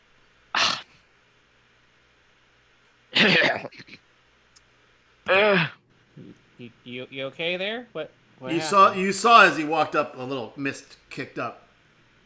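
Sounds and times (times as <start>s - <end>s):
person coughing: 3.2s - 4.0s
speech: 6.6s - 11.6s
laughter: 8.5s - 11.6s.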